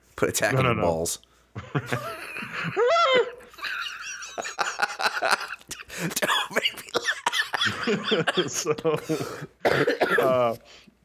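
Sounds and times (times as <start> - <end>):
speech: 0.2 - 3.4, 5.2 - 7.0, 7.9 - 10.9
laughter: 1.6 - 9.5
person coughing in harsh hacking bursts: 6.0 - 10.6.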